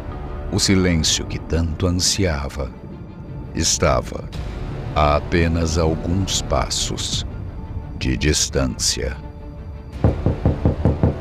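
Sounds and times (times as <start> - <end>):
speech: 0.5 - 2.8, 3.6 - 7.3, 8.0 - 9.2
knocking on the wooden door of an apartment: 10.0 - 11.1.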